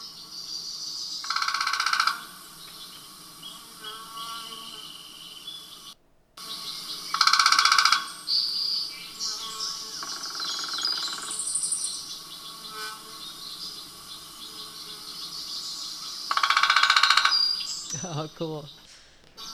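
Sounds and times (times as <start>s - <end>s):
faint bird calls chirping: 0.0s - 19.5s
northern flicker woodpecker drumming: 0.0s - 19.5s
speech: 18.1s - 18.8s.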